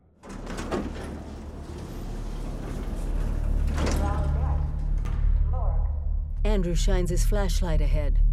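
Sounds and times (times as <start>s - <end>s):
elevator doors sliding open: 0.2s - 5.0s
steady low mechanical hum: 0.2s - 6.4s
speech: 6.6s - 8.3s.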